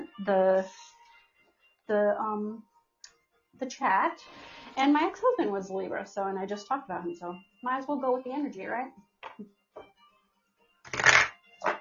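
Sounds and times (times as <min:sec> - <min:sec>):
speech: 0:00.2 - 0:00.9, 0:01.9 - 0:02.7, 0:03.6 - 0:09.9
deck of oracle cards being shuffled: 0:10.9 - 0:11.7.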